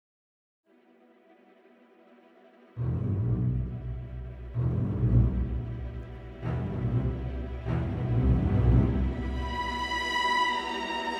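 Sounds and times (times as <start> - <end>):
fast soft low strings at low velocities: 2.8 - 11.1.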